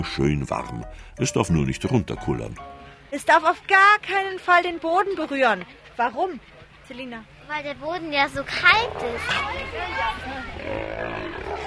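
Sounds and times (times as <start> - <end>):
speech: 0.0 - 11.6
murmur of people: 1.9 - 11.6
seals snorting and grunting at feeding: 10.5 - 11.6.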